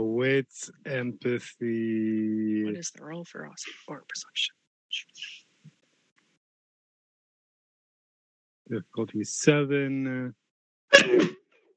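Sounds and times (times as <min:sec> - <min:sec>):
speech: 0:00.0 - 0:05.4, 0:08.7 - 0:10.4, 0:11.0 - 0:11.4
sneeze: 0:10.9 - 0:11.4.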